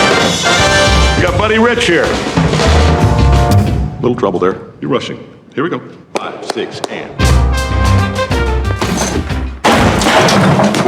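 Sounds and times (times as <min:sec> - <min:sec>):
band music: 0:00.0 - 0:04.5, 0:07.1 - 0:09.6
speech: 0:01.5 - 0:03.0, 0:04.0 - 0:08.2, 0:10.2 - 0:10.8
clattering spray of debris: 0:08.8 - 0:10.8
thrown object smashing against a wall: 0:08.8 - 0:10.8.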